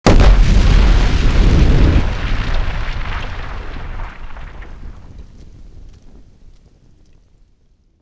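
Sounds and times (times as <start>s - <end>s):
close explosion: 0.0s - 6.3s.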